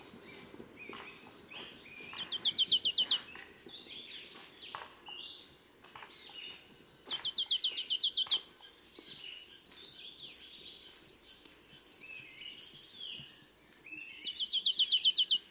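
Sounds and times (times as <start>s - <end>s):
bird twittering notes: 2.0s - 3.3s, 7.1s - 8.5s, 14.0s - 15.4s
marsh tit Poecile palustris rattling with rapid high clipped notes: 2.2s - 3.4s, 7.1s - 8.4s, 14.2s - 15.4s.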